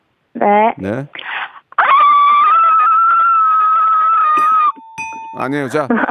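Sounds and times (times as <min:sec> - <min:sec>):
speech: 0:00.4 - 0:01.2, 0:05.4 - 0:06.0
person imitating a dog with a whining howl: 0:01.8 - 0:04.4.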